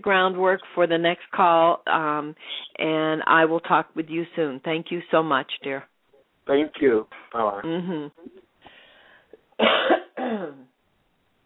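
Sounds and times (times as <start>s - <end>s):
speech: 0.0s - 5.9s, 6.5s - 8.4s, 9.6s - 10.7s
strained voiced throat sounds: 7.1s - 8.4s
person coughing: 9.6s - 10.7s.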